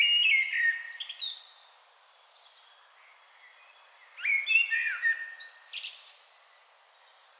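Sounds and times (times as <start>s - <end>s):
Common blackbird Turdus merula song: 0.0s - 1.5s, 3.4s - 6.8s.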